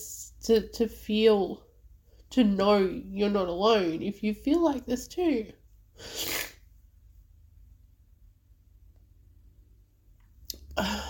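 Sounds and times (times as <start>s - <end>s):
speech: 0.0s - 1.7s, 2.3s - 6.3s
person sniffling: 6.0s - 6.6s.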